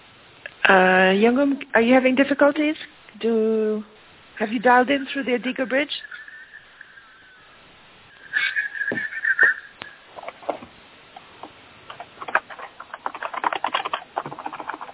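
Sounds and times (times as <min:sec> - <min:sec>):
speech: 0:00.7 - 0:06.1
thin whistling tone: 0:06.0 - 0:10.0
typing on a computer keyboard: 0:12.0 - 0:14.9.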